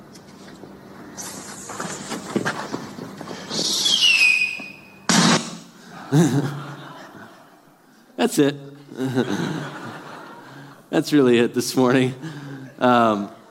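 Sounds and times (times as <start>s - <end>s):
sharp loud firework bursts: 3.5s - 5.7s
laughter: 5.8s - 7.8s, 8.8s - 10.9s
speech: 6.1s - 6.6s, 8.2s - 9.8s, 10.9s - 13.4s.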